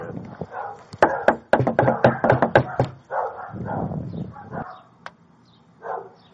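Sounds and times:
barking: 0.4 - 1.4, 2.0 - 4.9, 5.8 - 6.2
loud sharp knocks on a door by sheriff's office officers: 1.0 - 3.0.

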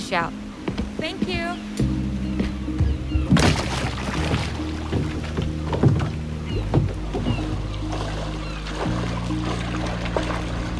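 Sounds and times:
speech: 0.1 - 0.4, 1.0 - 1.8
wash of the surrounding water: 0.7 - 10.7
kayak paddle dipping and splashing through water: 3.2 - 10.7.

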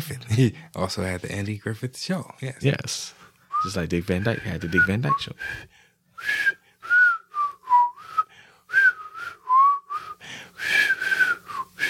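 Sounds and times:
speech: 0.0 - 6.6
person whistling a theme tune: 4.4 - 11.8.

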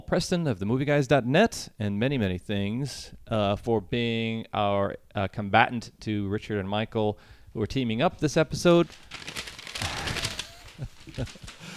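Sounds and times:
speech: 0.1 - 9.3, 10.8 - 11.7
paper crumpling and crinkling: 8.6 - 11.7
laughter: 10.0 - 11.7.

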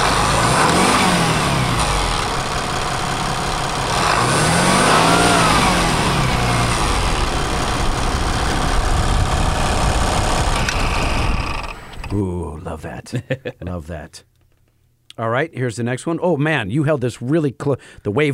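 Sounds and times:
mechanically injected 5.9 diesel engine of the first Ram revving: 0.0 - 12.2
laughter: 13.1 - 13.8
speech: 13.1 - 14.4, 15.2 - 18.3.

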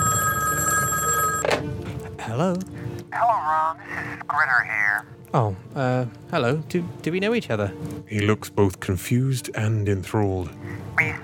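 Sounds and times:
telephone ringing with a bright electronic tone: 0.0 - 1.6
speech: 2.4 - 11.2.

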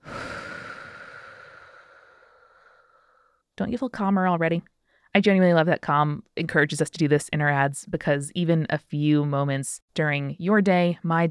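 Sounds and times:
slow breath in through the nose and out through the mouth: 0.0 - 3.5
speech: 3.6 - 11.2.

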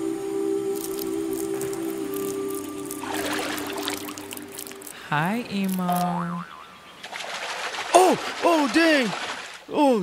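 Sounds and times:
urine stream splashing and trickling into water: 0.8 - 6.2, 7.0 - 9.7
speech: 5.1 - 6.5, 8.1 - 10.0.

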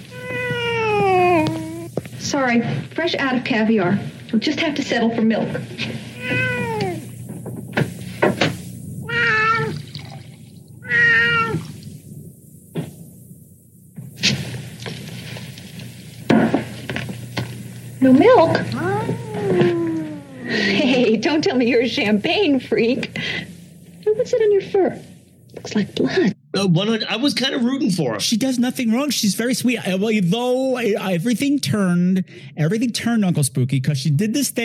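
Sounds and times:
cat meowing: 0.0 - 1.9, 6.2 - 7.1, 9.0 - 9.9, 10.8 - 11.8, 18.7 - 20.7
hiss: 0.0 - 34.6
speech: 2.3 - 6.4, 18.1 - 18.9, 21.4 - 23.5, 24.2 - 34.6.

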